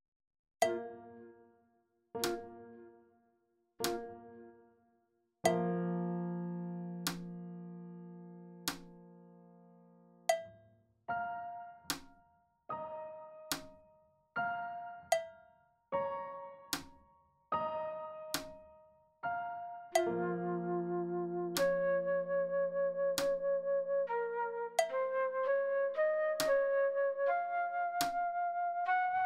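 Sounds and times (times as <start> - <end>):
slow piano backing track: 0.6 - 3.2, 3.8 - 4.9, 5.5 - 10.4, 11.1 - 29.2
slow flute backing track: 20.0 - 29.2.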